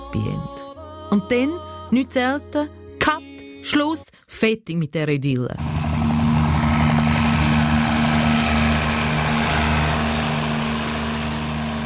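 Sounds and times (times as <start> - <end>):
speech: 0.1 - 5.8
rescue helicopter flying over a house roof in a mountain region: 5.6 - 11.8.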